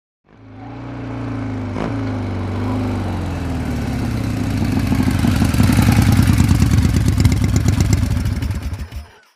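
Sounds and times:
Harley Davidson motorcycle stopping: 0.3 - 9.3.

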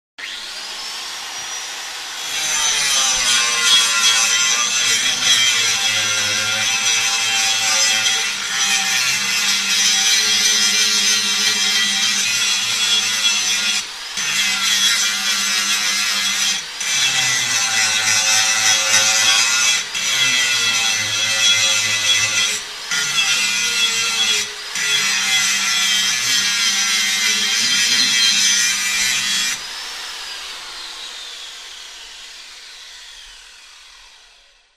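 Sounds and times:
industrial grinder: 0.2 - 34.6.

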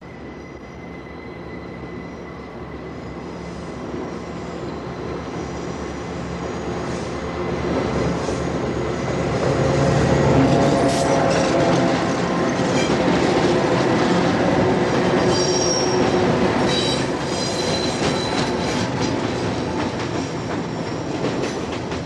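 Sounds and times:
elevated train passing by: 0.0 - 22.0
elevated train click: 10.4 - 22.0.

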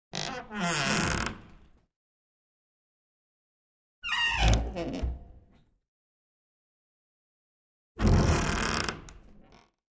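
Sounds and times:
wooden door creaking: 0.2 - 1.5, 4.0 - 5.5, 8.0 - 9.8.

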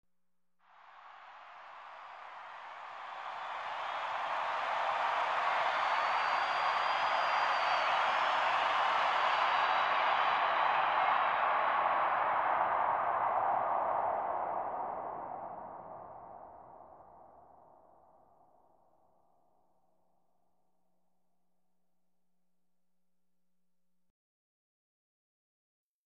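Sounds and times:
sports arena crowd: 0.7 - 18.2.

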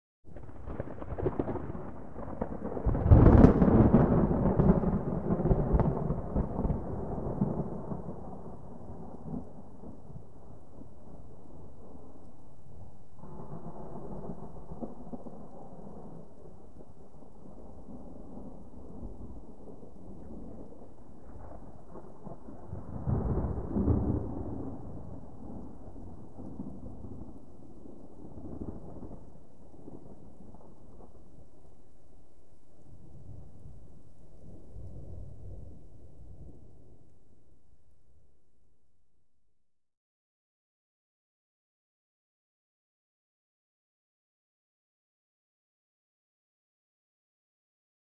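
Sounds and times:
hard low distant thunder: 0.3 - 32.0, 32.8 - 37.3.

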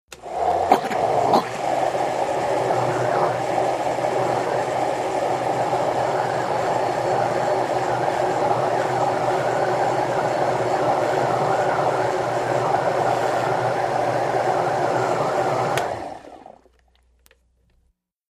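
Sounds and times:
blender running on slow speed: 0.1 - 16.8.

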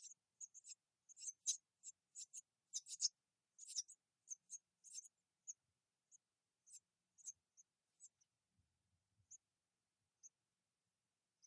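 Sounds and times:
wren giving dry high ticking calls: 0.0 - 8.3, 9.2 - 9.5, 10.2 - 10.4.

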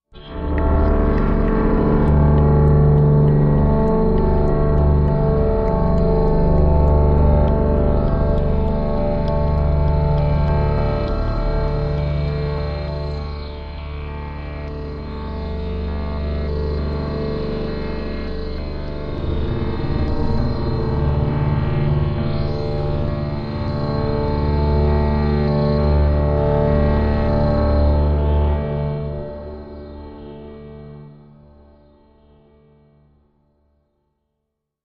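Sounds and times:
low musical pulse: 0.2 - 29.8.

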